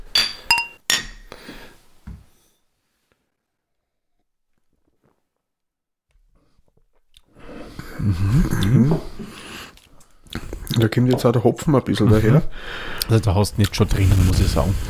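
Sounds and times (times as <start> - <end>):
beer glasses clinking in a toast: 0.1 - 1.3
speech: 8.0 - 9.2, 10.8 - 14.8.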